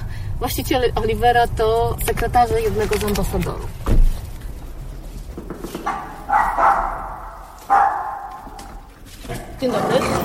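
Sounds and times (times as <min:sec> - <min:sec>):
steady low rumble of noise: 0:00.0 - 0:09.6
speech: 0:00.4 - 0:04.0, 0:09.6 - 0:10.1
dog barking: 0:05.8 - 0:08.9.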